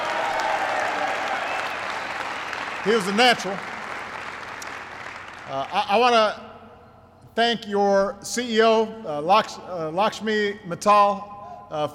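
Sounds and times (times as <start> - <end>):
audience applause at a speech in the Cleveland area: 0.0 - 5.8
speech: 2.8 - 3.7, 5.5 - 6.5, 7.4 - 11.9.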